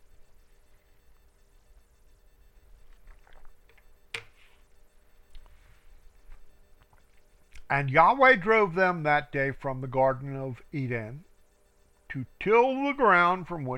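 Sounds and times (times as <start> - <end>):
faint soft gulps: 2.7 - 4.0
person sipping water: 2.8 - 3.8
speech: 7.7 - 11.3, 12.1 - 13.7.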